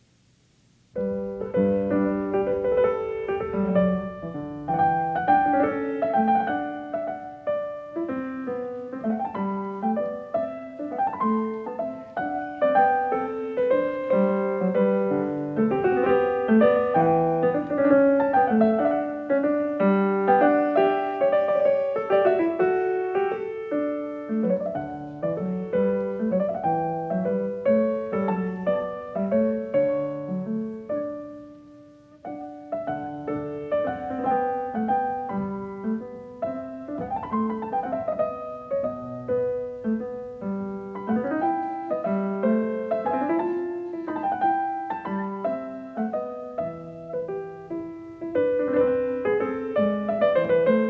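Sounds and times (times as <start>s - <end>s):
classical variation for two keyboards played by pianists: 0.0s - 50.8s.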